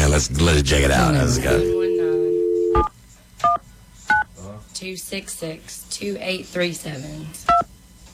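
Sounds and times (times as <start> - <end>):
speech: 0.2 - 1.8, 4.8 - 7.6
phone dial tone: 1.5 - 2.9.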